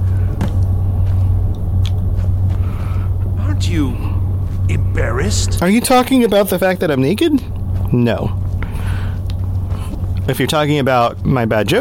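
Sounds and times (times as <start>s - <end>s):
magical apparatus spinning in a video game, rumbling and humming: 0.0s - 11.7s
speech: 3.7s - 4.1s, 4.7s - 8.4s, 10.3s - 11.7s.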